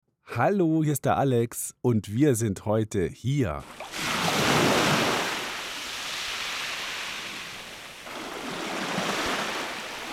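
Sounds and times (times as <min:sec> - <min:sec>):
speech: 0:00.3 - 0:04.0
ocean waves breaking and washing onto the shore: 0:03.6 - 0:10.1.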